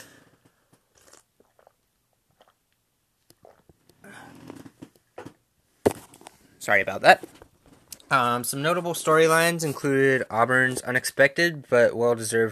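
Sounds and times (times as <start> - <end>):
person sipping water: 0.4 - 2.7, 3.3 - 4.9
swallowing water: 0.9 - 2.6, 3.3 - 5.0
speech: 6.6 - 7.4, 8.1 - 12.5.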